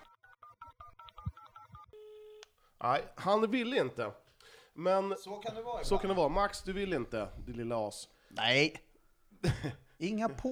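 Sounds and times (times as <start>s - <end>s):
steady telephone tone: 0.0s - 2.4s
speech: 2.8s - 4.2s, 4.8s - 10.5s.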